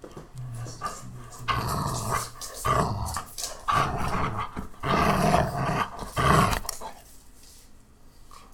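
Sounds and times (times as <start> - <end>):
angry dog: 0.4 - 7.0.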